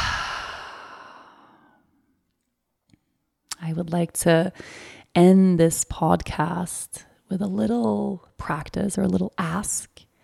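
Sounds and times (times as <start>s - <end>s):
deep exhale through an open mouth during a guided breathing exercise: 0.0s - 1.6s
speech: 3.7s - 10.0s.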